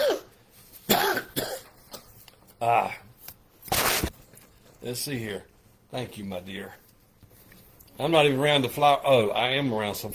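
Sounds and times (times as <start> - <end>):
person coughing harshly: 0.0 - 2.8
speech: 2.6 - 3.0, 4.8 - 6.8, 8.0 - 10.1.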